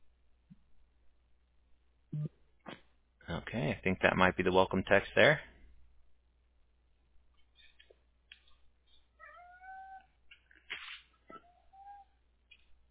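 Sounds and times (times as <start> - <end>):
speech: 3.5 - 5.5
hungry cat meowing: 9.2 - 10.1, 11.3 - 12.2
sharper cat yowl: 9.2 - 10.1.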